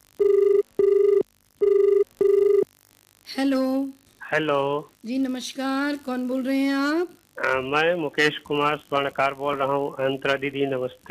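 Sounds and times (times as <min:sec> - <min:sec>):
telephone ringing for incoming call with electronic warbling tone: 0:00.2 - 0:02.6
speech: 0:03.4 - 0:11.0.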